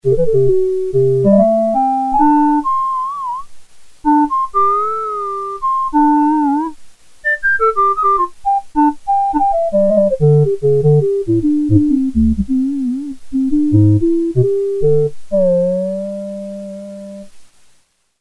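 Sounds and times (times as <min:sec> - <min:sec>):
Sequential Circuits Prophet-5 factory clarinet patch: 0:00.0 - 0:03.5, 0:04.1 - 0:17.3.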